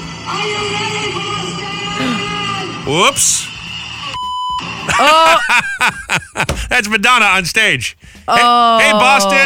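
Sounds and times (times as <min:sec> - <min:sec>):
noisy background: 0:00.0 - 0:09.4
speech: 0:00.3 - 0:01.3, 0:02.9 - 0:03.5, 0:04.9 - 0:09.4
high-pitched censor bleep: 0:04.0 - 0:04.6
laughter: 0:04.9 - 0:06.7
loud drawn-out voice calling out: 0:08.3 - 0:09.4.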